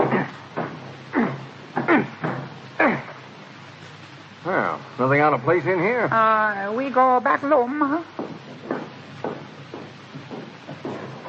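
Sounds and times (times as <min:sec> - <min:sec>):
door being broken in with heavy thumps: 0:00.0 - 0:03.1, 0:08.1 - 0:11.2
wood of a door creaking and groaning: 0:00.0 - 0:05.0, 0:08.0 - 0:11.2
speech: 0:04.5 - 0:08.2.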